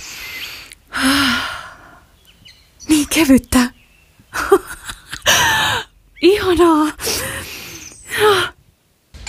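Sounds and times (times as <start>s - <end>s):
person breathing heavily: 0.0s - 2.2s, 5.3s - 5.9s, 7.0s - 8.5s
speech: 3.2s - 3.7s.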